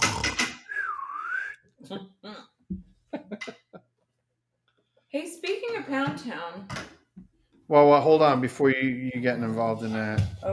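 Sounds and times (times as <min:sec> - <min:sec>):
slide whistle: 0:00.7 - 0:01.6
speech: 0:01.9 - 0:02.8, 0:05.2 - 0:06.9, 0:07.7 - 0:10.5.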